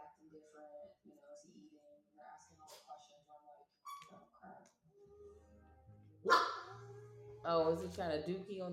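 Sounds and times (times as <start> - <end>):
voices in the room: 0.0 - 8.7
dog barking and yipping: 6.2 - 6.7
speech: 7.4 - 8.7.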